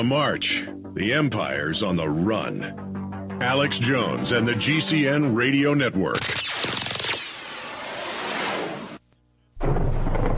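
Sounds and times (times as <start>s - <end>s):
speech: 0.0s - 6.9s
sharp thunderclap: 9.6s - 10.3s.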